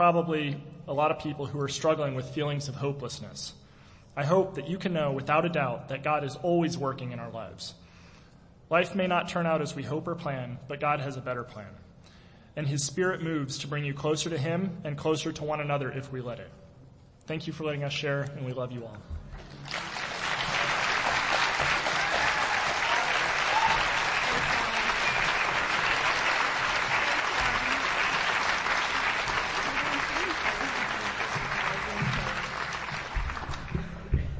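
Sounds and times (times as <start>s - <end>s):
speech: 0.0s - 3.6s, 4.2s - 7.8s, 8.7s - 11.8s, 12.6s - 16.6s, 17.3s - 19.8s
large church audience applauding: 19.5s - 34.2s.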